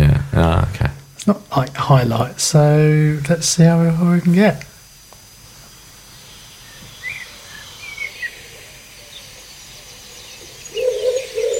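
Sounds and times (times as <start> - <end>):
quiet outdoor hum: 0.0 - 11.5
speech: 1.3 - 4.7
blackbird singing: 6.2 - 11.5
pigeon cooing: 10.4 - 11.5.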